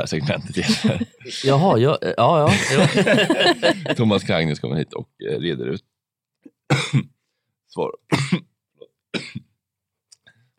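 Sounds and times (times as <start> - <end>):
speech: 0.0 - 5.9, 6.7 - 8.5
laughter: 0.4 - 1.3, 2.4 - 4.2
person coughing from something swallowed wrong: 6.7 - 7.1, 8.1 - 8.5, 9.2 - 9.5.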